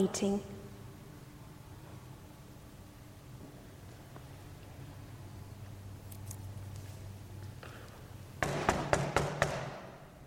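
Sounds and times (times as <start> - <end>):
speech: 0.0 - 0.5
sharp knocking on a door: 8.4 - 9.8.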